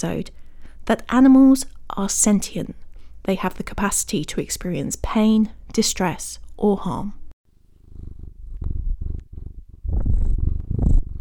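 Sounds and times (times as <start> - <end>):
speech: 0.0 - 7.2
cat purring: 7.6 - 11.1.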